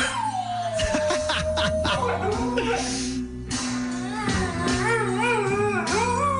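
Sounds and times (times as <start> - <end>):
dog howling along to music: 0.0 - 2.9, 4.2 - 6.3
loud steady music backing track: 0.0 - 6.3.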